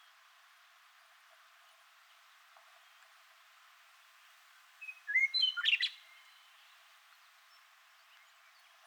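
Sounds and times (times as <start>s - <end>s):
Western meadowlark song with clear whistles and fluty jumbled notes: 4.8s - 6.4s.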